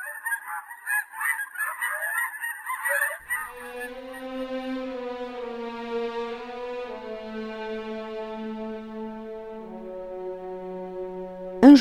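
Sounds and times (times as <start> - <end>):
flock of geese honking: 0.0 - 11.8
speech: 0.5 - 1.6, 2.9 - 4.8
long steady droning tone: 3.3 - 11.8.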